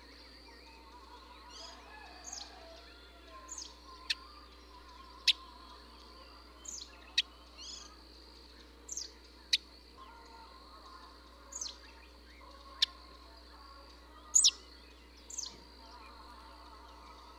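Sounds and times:
faint background hum: 0:00.0 - 0:17.3
Russet sparrow chirping: 0:03.4 - 0:17.3.

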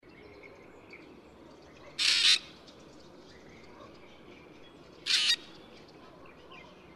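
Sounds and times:
black drongo calling: 0:02.0 - 0:02.6, 0:05.0 - 0:05.6.

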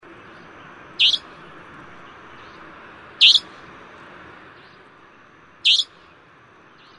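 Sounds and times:
background hiss: 0:00.0 - 0:06.9
Savanna nightjar calling with piercing rasping high notes: 0:00.3 - 0:03.6, 0:05.6 - 0:06.2, 0:06.8 - 0:06.9.

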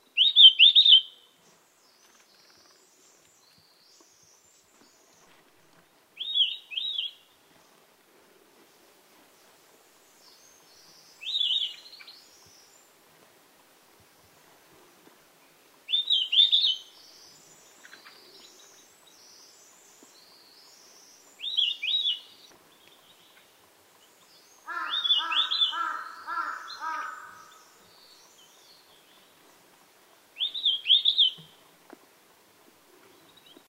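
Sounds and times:
white-browed bush robin singing: 0:00.0 - 0:05.4, 0:06.2 - 0:07.4, 0:10.2 - 0:12.8, 0:15.9 - 0:29.5, 0:30.4 - 0:31.6.

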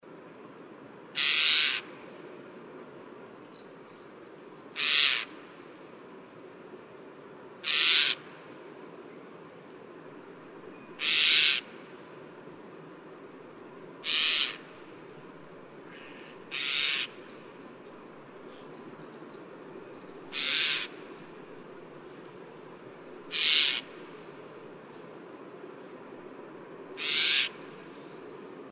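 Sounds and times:
Eurasian jay calling: 0:01.2 - 0:01.9, 0:04.8 - 0:05.4, 0:07.6 - 0:08.2, 0:11.0 - 0:11.7, 0:14.0 - 0:14.7, 0:15.9 - 0:17.3, 0:20.3 - 0:21.0, 0:23.3 - 0:23.9, 0:27.0 - 0:27.6.

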